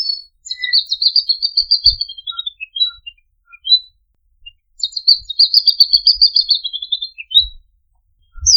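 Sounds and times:
male magpie robin singing warbling whistled phrases: 0.0s - 7.6s, 8.2s - 8.5s
soft low thumps: 8.3s - 8.5s.

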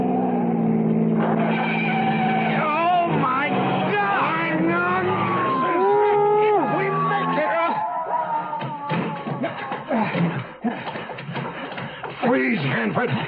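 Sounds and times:
car engines roaring as a vehicle accelerates: 0.0s - 8.0s
tires squealing and skidding: 0.0s - 8.6s
clattering and scraping: 1.2s - 4.0s, 8.9s - 13.2s
laughter: 5.5s - 12.2s.

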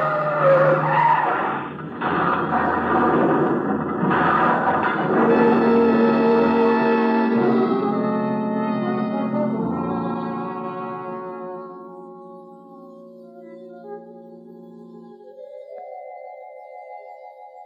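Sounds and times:
car engine roaring: 0.0s - 11.0s
car tires squealing while skidding on a curve: 0.0s - 11.2s.

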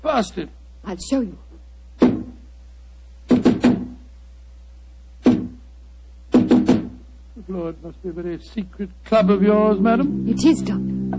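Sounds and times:
low steady hum: 0.0s - 11.1s
speech: 0.1s - 1.4s, 7.5s - 11.0s
firm knocks on a solid wooden door: 3.3s - 4.0s, 5.3s - 5.6s, 6.3s - 7.0s.

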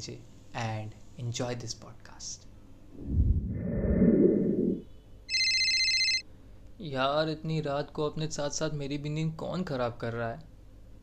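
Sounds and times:
speech: 0.0s - 3.7s, 6.8s - 10.5s
phone ringing late at night: 5.3s - 6.2s.

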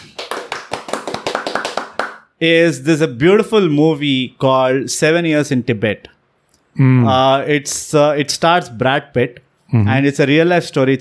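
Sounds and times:
hand clapping: 0.0s - 2.3s
speech: 2.4s - 6.1s, 6.8s - 10.9s.

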